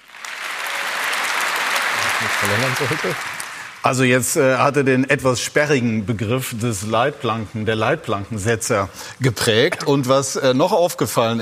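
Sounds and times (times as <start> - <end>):
large audience applause: 0.0 - 3.8
speech: 2.4 - 11.3.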